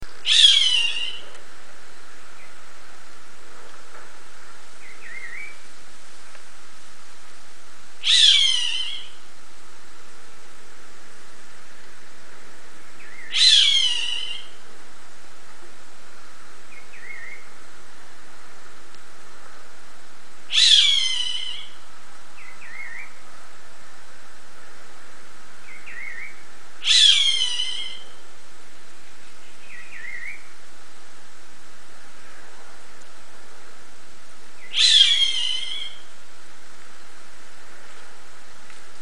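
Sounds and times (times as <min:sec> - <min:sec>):
roadside hawk calling: 0:00.2 - 0:01.3, 0:08.0 - 0:09.2, 0:13.0 - 0:14.6, 0:20.5 - 0:21.8, 0:25.7 - 0:28.2, 0:34.6 - 0:36.1.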